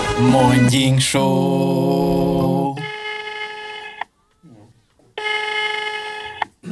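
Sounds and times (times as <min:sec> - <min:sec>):
speech: 0:00.2 - 0:02.8
outgoing phone call electronic ring tone: 0:02.7 - 0:06.5.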